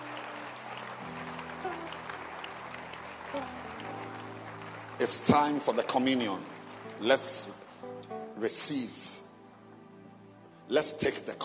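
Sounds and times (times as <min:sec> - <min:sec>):
audience clapping: 0:00.0 - 0:08.9
sustained low instrumental tones: 0:00.0 - 0:11.4
speech: 0:05.0 - 0:07.6, 0:08.4 - 0:09.1, 0:10.7 - 0:11.4.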